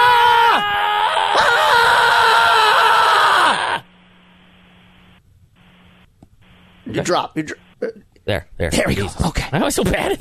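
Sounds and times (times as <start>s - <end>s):
person screaming into a phone line: 0.0s - 3.8s
speech: 7.0s - 10.1s.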